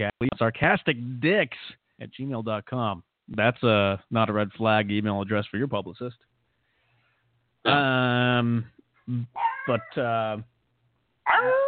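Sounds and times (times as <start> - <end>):
speech: 0.0 - 6.3, 7.6 - 10.5, 11.3 - 11.6
dog barking and yelping: 9.4 - 10.0, 11.2 - 11.6.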